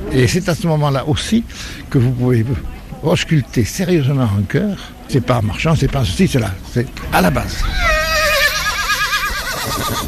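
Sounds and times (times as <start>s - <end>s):
speech: 0.1s - 7.9s, 9.7s - 10.0s
horse whinnying at an auction presentation ring: 7.6s - 10.0s.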